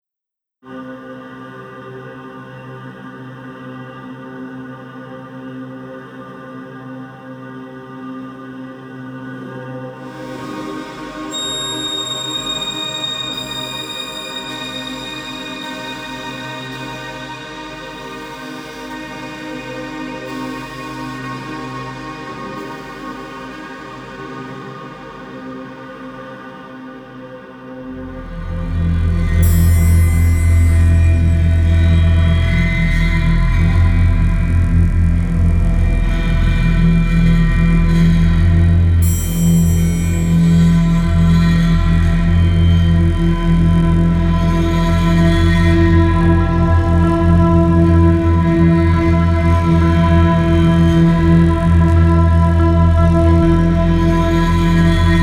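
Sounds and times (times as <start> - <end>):
anxious energy music without drums: 28.0 - 55.2.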